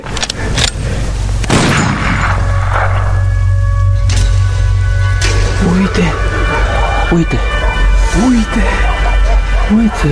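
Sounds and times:
steady low hum: 0:00.0 - 0:10.0
gunshots from a gun: 0:01.4 - 0:02.9
laughter: 0:06.1 - 0:10.0
speech: 0:07.1 - 0:07.5, 0:08.2 - 0:09.0, 0:09.7 - 0:10.0.

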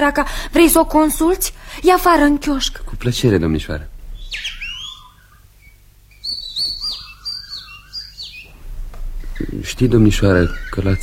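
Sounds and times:
speech: 0:00.0 - 0:03.9, 0:09.7 - 0:11.0
faint low hum: 0:00.0 - 0:11.0
caged nightingale chirping and whistling: 0:04.2 - 0:08.6, 0:09.2 - 0:11.0.

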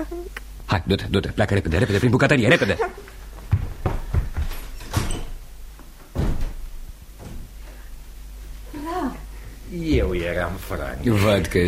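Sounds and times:
speech: 0:00.0 - 0:03.0, 0:10.5 - 0:11.6
sharp knocks on a door: 0:03.5 - 0:04.7, 0:09.9 - 0:10.3.

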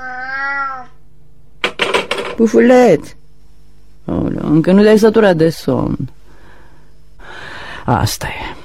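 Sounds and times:
cat meowing: 0:00.0 - 0:01.0
speech: 0:02.4 - 0:03.2, 0:04.1 - 0:06.2, 0:07.9 - 0:08.6.

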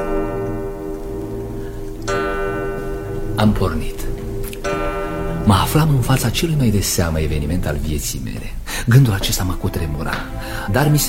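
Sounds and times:
sustained ringing tone: 0:00.0 - 0:07.7
bright clock chime striking the hour: 0:00.0 - 0:07.8
clock ticking: 0:00.0 - 0:11.0
speech: 0:03.4 - 0:04.2, 0:05.5 - 0:11.0.

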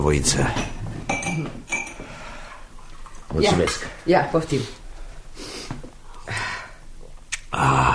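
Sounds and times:
speech: 0:00.0 - 0:00.7, 0:03.4 - 0:04.8
glass clinking as a glass of cold water is served: 0:00.6 - 0:02.1.

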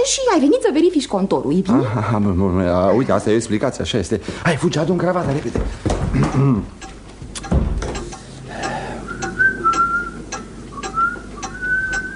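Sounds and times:
speech: 0:00.0 - 0:06.9
person whistling a tune indoors: 0:09.1 - 0:12.1.

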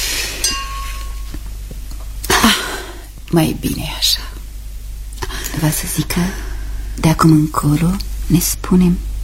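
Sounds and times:
wine glasses clinking in a toast: 0:00.4 - 0:01.3
speech: 0:03.3 - 0:04.2, 0:05.6 - 0:09.1.

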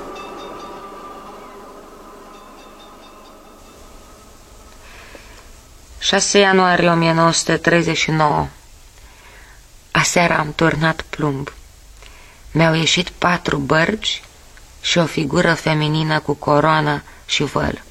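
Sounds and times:
screeching tones: 0:00.0 - 0:07.8
tram low rumble: 0:00.0 - 0:08.9
tram electric whine: 0:00.0 - 0:09.0
speech: 0:06.0 - 0:08.6, 0:10.2 - 0:11.6, 0:12.5 - 0:17.8.

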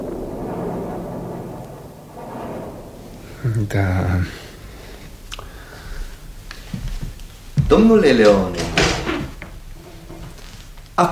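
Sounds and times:
thunder rumble of an approaching storm: 0:00.0 - 0:10.1
speech: 0:03.4 - 0:04.5, 0:07.7 - 0:08.9.

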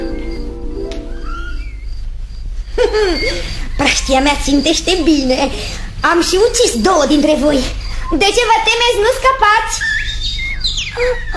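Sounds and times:
steady low humming background: 0:00.0 - 0:08.2
small birds singing in a forest: 0:00.0 - 0:11.3
speech: 0:03.0 - 0:10.0, 0:11.0 - 0:11.3.

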